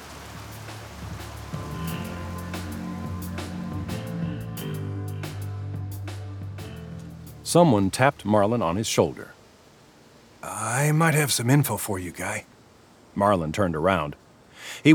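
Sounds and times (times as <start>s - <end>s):
splashes and drips: 0.0s - 3.7s
heavy rain pouring down over a swamp: 0.0s - 13.9s
low sustained humming tones: 1.5s - 7.5s
speech: 7.5s - 9.4s, 10.8s - 12.5s, 13.2s - 14.9s.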